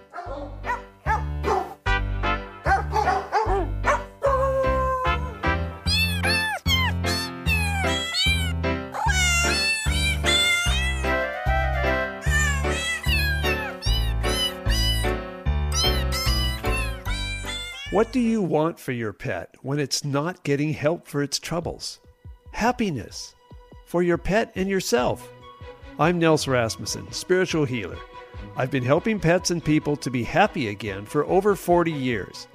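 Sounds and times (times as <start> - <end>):
barking dog sounds: 0.0 - 1.8, 2.6 - 4.4
cat meows pitched into a bouncy musical jingle melody: 4.2 - 18.3
speech: 18.1 - 22.0, 22.6 - 25.4, 26.0 - 32.5.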